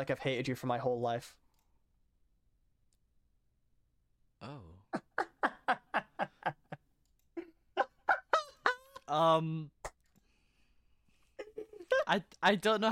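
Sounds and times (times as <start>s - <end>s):
speech: 0.0s - 1.4s, 4.4s - 5.3s, 9.1s - 9.8s, 12.1s - 12.9s
laughter: 4.9s - 9.1s
person imitating bird calls: 7.4s - 9.2s.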